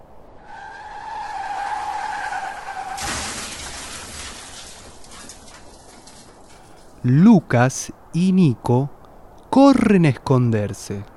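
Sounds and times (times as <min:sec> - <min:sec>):
car tires skidding: 0:00.2 - 0:07.0
rumbling: 0:00.5 - 0:07.1
crash-like burst of broadband noise: 0:00.7 - 0:07.0
speech: 0:07.0 - 0:11.1.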